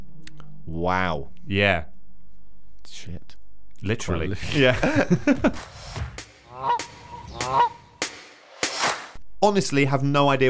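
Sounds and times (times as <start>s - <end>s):
speech: 0.7s - 1.9s, 2.9s - 6.8s, 7.5s - 7.7s, 9.4s - 10.4s
laughter: 4.4s - 5.8s
seagull calls: 6.4s - 8.1s.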